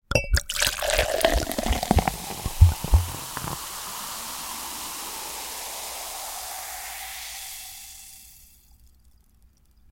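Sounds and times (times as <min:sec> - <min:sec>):
ice dropping into a glass: 0:00.3 - 0:03.6
chugging soda pouring into a glass: 0:00.4 - 0:08.9.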